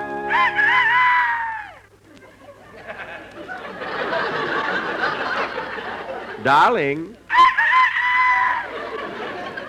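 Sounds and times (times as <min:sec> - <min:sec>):
rooster crowing: 0:00.2 - 0:01.8, 0:07.3 - 0:09.0
laughter: 0:02.0 - 0:06.5, 0:08.4 - 0:09.6
speech: 0:06.5 - 0:07.2.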